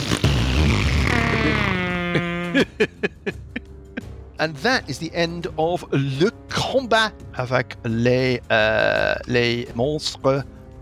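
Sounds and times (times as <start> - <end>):
voice imitating a fart: 0.0 - 2.8
laughter: 1.1 - 4.0
speech: 2.2 - 3.5, 4.4 - 10.8.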